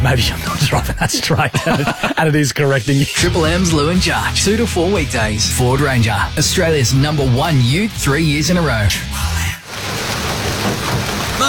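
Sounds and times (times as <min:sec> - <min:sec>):
speech: 0:00.0 - 0:09.4
laughter: 0:00.2 - 0:03.2
heavy rain pouring: 0:09.2 - 0:11.4.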